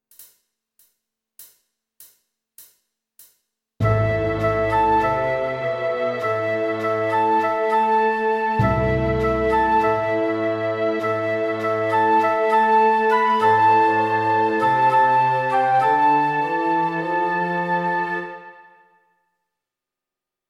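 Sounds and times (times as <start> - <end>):
transverse flute: 3.8 - 19.1.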